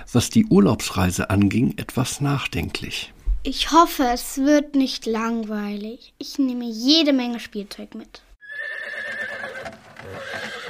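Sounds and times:
speech: 0:00.1 - 0:08.3
horse pulling a royal carriage neighing: 0:08.4 - 0:10.6.

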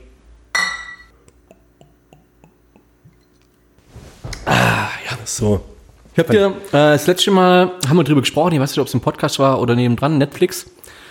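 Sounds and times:
glasses clinking together in a toast: 0:00.5 - 0:01.2, 0:03.1 - 0:03.6
speech: 0:05.4 - 0:10.8.

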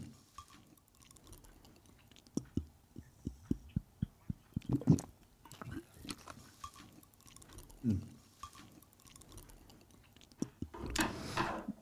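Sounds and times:
faint swallowing clicks of someone drinking from a glass: 0:00.4 - 0:11.0.

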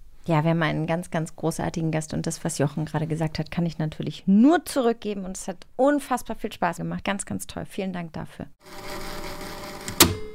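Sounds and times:
faint hum: 0:00.0 - 0:08.5
speech: 0:00.2 - 0:09.2
cassette tape flipped in a deck with plastic click and clunk: 0:09.8 - 0:10.3.

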